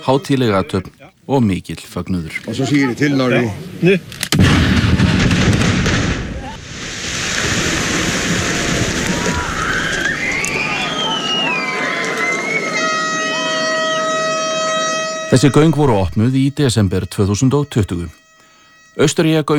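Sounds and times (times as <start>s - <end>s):
speech: 0.0s - 4.6s, 15.3s - 18.2s, 19.0s - 19.5s
loud tunnel blasting explosion: 4.4s - 10.2s
wavering and steady sustained tones: 10.0s - 19.5s.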